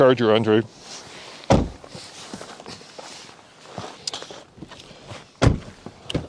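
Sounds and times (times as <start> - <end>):
speech: 0.0 - 1.6
rustling and shuffling of person climbing into sedan: 0.5 - 6.2
heavy Charger family sedan car door thunk: 1.5 - 1.9, 5.4 - 6.2.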